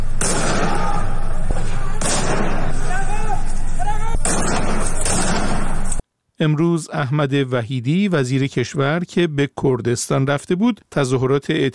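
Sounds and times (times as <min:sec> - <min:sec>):
noisy crowd of protesters shouting in a street: 0:00.0 - 0:05.0
gunshots from security forces firing on protesters in Sanandaj: 0:00.0 - 0:06.0
speech: 0:06.4 - 0:11.7.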